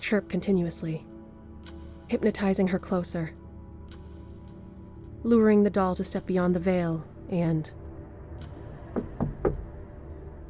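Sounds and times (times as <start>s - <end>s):
speech: 0.1s - 1.1s, 2.1s - 3.4s, 5.2s - 7.8s
thumping knocks on metal: 8.9s - 9.7s.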